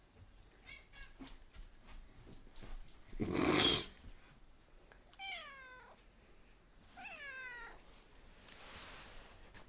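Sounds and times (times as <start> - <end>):
cat retching and vomiting: 3.2 - 4.0.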